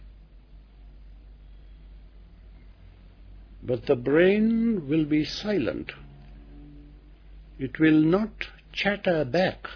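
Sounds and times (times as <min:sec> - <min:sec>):
distant road traffic: 0:01.4 - 0:08.6
speech: 0:03.7 - 0:06.0, 0:07.6 - 0:09.7.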